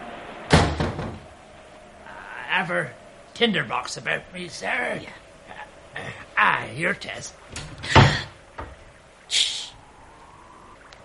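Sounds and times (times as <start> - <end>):
low noise: 0.0 - 11.0
door being shut: 0.5 - 1.3, 7.5 - 8.8
speech: 2.6 - 5.2, 6.0 - 7.4.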